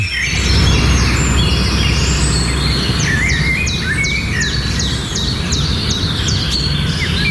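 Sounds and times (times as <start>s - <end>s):
bird chirping high phrases: 0.0s - 7.3s
low rumble of outdoor noise: 0.0s - 7.3s.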